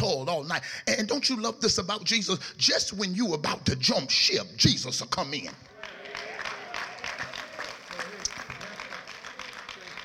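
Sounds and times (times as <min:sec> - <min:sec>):
speech: 0:00.4 - 0:05.7
light scattered clapping from a gathered audience: 0:05.7 - 0:10.0.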